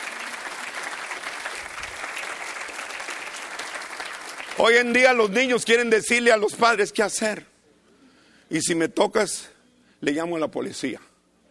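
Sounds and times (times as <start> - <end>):
large audience applauding: 0.0 - 5.1
speech: 4.6 - 7.5, 8.5 - 11.1.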